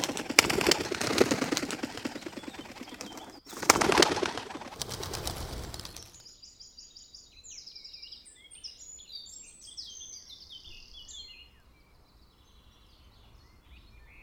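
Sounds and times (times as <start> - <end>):
released pigeon flapping wings taking off: 0.0 - 6.2
chorus of small birds chirping and twittering: 0.0 - 14.2.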